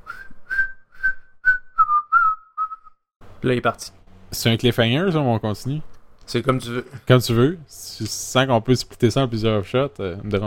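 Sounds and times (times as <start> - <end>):
man whistling a short tune while walking away: 0.0 - 3.0
speech: 3.4 - 10.4.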